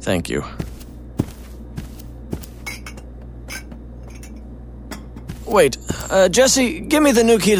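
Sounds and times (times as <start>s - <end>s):
speech: 0.0s - 0.7s, 5.5s - 7.5s
low steady hum: 0.0s - 7.5s
dishes and cutlery clattering while making a sandwich: 2.6s - 5.2s.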